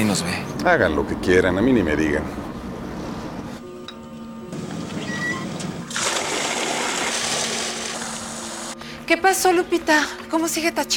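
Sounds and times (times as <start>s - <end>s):
speech: 0.1s - 2.5s, 9.1s - 10.9s
acid being dumped, gushing and splashing: 5.9s - 8.7s.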